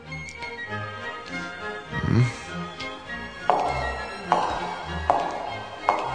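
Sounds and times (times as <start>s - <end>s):
speech: 2.1s - 2.5s
cuckoo clock and wall clock ticking: 2.6s - 6.1s
shoe striking asphalt: 3.5s - 6.1s.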